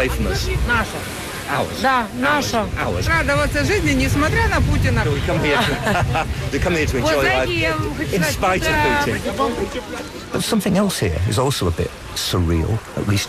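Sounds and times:
lively crowd chattering at a crowded beach in Ukraine: 0.0s - 13.2s
low wash of surf at a crowded beach: 0.0s - 13.2s
speech: 0.0s - 13.2s
laughter: 5.3s - 7.2s.

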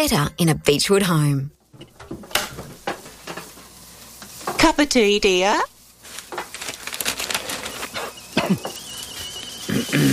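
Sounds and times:
speech: 0.0s - 1.6s, 4.7s - 5.7s, 8.5s - 8.8s
kettle boiling: 1.7s - 10.1s
kettle whistle: 7.4s - 10.1s.

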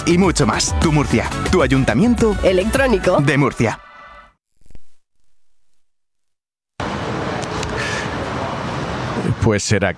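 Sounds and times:
speech: 0.0s - 3.8s, 9.5s - 9.9s
city street traffic in the centre of Madrid outside a building of more than 30 floors: 6.8s - 9.9s.

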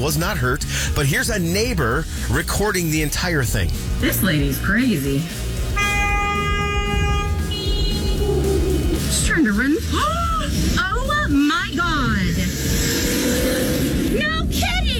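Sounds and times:
speech: 0.0s - 5.4s
loud car engine rumbling and roaring: 2.0s - 14.9s
car horn blaring: 5.7s - 9.4s.

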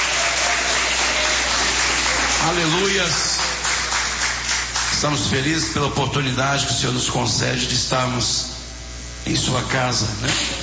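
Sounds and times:
church congregation clapping hands during worship: 0.0s - 5.3s
speech: 2.4s - 3.4s, 5.0s - 8.5s, 9.2s - 10.6s.

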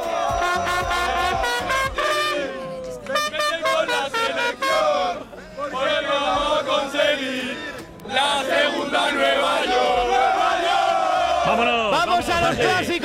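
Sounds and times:
trumpet blaring tuneful lines over the crowd: 0.0s - 5.4s
Spanish football fans chanting while streaming into a stadium: 0.0s - 13.0s.

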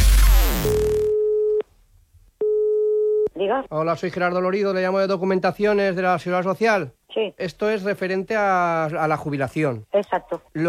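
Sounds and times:
telephone line tone on an outgoing prank call: 1.0s - 1.6s, 2.4s - 3.3s
speech: 3.4s - 10.6s.

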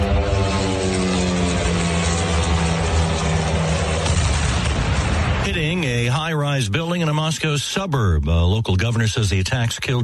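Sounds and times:
small attack drone engine with propeller-like whine: 0.0s - 5.9s
speech: 6.6s - 10.0s.

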